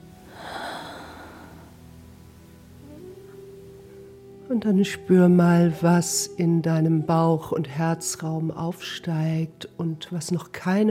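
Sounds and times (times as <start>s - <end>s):
faint low steady hum: 0.0s - 10.8s
deep breath drawn in during a guided breathing exercise: 0.3s - 1.8s
speech: 4.5s - 10.8s.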